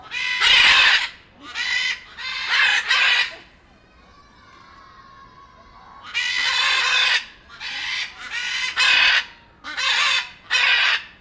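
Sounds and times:
blue-and-yellow macaw giving harsh raspy squawks at the Jardin des Plantes, Paris: 0.0s - 3.4s, 6.1s - 11.1s.

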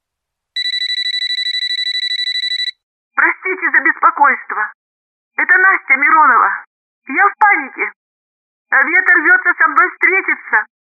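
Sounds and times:
electronic telephone ring: 0.6s - 2.8s
speech: 3.4s - 4.8s, 5.4s - 8.0s, 8.7s - 10.8s.

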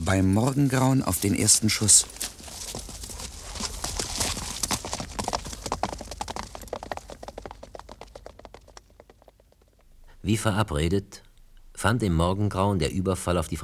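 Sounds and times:
horse hooves clattering as a rider rides off: 0.0s - 10.1s
speech: 0.1s - 2.5s, 10.3s - 11.2s, 11.8s - 13.6s.

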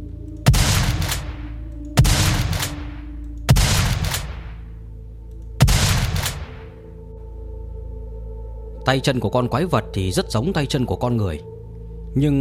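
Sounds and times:
gunfire sound effect gunshots: 0.5s - 1.4s, 2.0s - 4.6s, 5.6s - 6.8s
speech: 8.9s - 11.5s, 12.2s - 12.3s.

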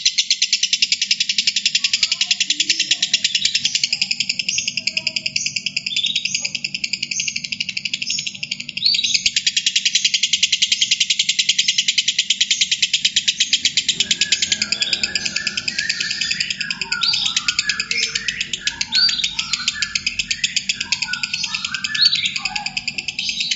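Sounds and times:
lovebird chattering song in konslet singing style: 0.0s - 23.5s
faint low hum: 13.3s - 23.5s.

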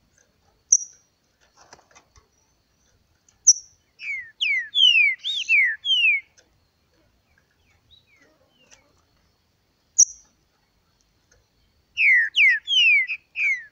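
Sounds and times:
kept Green-winged saltator singing in competition with a free-living bird: 3.5s - 6.4s, 12.0s - 13.7s.

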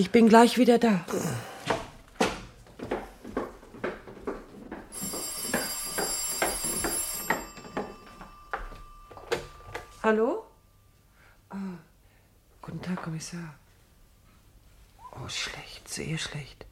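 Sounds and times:
speech: 0.0s - 1.5s, 10.1s - 10.5s, 13.1s - 13.6s, 15.2s - 16.7s
soft knocks: 1.7s - 10.0s
telephone ringing: 4.8s - 10.6s.

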